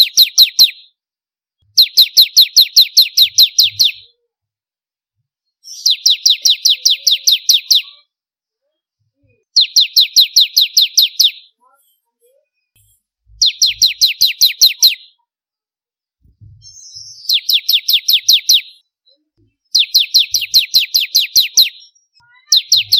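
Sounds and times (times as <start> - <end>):
bar-winged prinia chirping in bursts: 0.0 - 1.0, 1.6 - 4.2, 5.6 - 8.1, 9.4 - 11.8, 12.7 - 15.2, 16.4 - 22.9.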